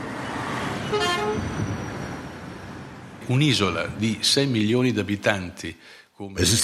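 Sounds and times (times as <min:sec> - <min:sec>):
cars, trucks and camper vans crawling up a steep road: 0:00.0 - 0:04.8
vehicle horn toot: 0:00.8 - 0:01.7
speech: 0:03.3 - 0:06.6.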